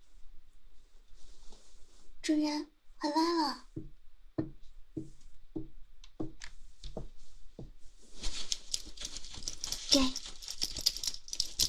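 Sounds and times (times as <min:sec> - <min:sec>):
speech: 0:02.3 - 0:04.5
German Shepherd's metal leash chain rattling and jingling as handed over: 0:08.3 - 0:11.6.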